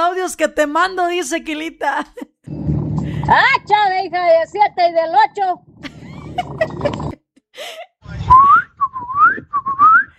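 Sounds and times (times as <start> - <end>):
speech: 0.2 - 2.3, 3.2 - 5.7, 6.4 - 8.5
person whistling rising sliding notes: 8.3 - 10.1.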